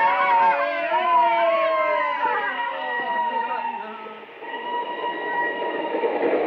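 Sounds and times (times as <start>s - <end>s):
train running on rails: 0.0s - 6.4s
metallic whines and squeals from train wheels: 4.4s - 6.4s.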